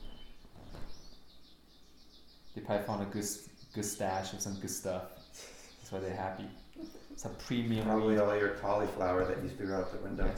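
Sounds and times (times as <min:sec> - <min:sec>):
faint birds chirping outdoors: 0:00.0 - 0:10.3
soft hiss: 0:00.0 - 0:10.3
speech: 0:02.6 - 0:10.3.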